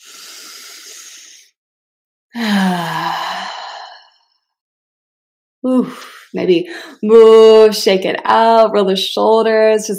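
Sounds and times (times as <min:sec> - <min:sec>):
deep breath in during a guided breathing exercise: 0:00.0 - 0:01.5, 0:02.4 - 0:04.1
slightly voiced exhaling sigh during a guided breathing exercise: 0:00.0 - 0:01.5, 0:02.4 - 0:04.2
speech: 0:05.6 - 0:09.9.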